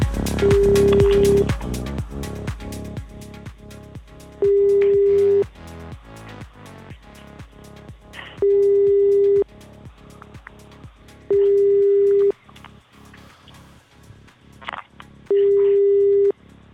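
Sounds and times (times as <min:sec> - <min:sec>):
faint rhythmic ticking: 0:00.0 - 0:16.7
telephone busy signal: 0:04.4 - 0:05.4, 0:08.4 - 0:09.4, 0:11.3 - 0:12.3, 0:15.3 - 0:16.3.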